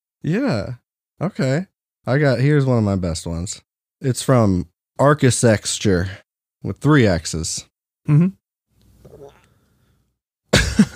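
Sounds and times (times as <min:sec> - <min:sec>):
speech: 0:00.2 - 0:08.4
harsh cough-like throat noise: 0:08.0 - 0:08.4.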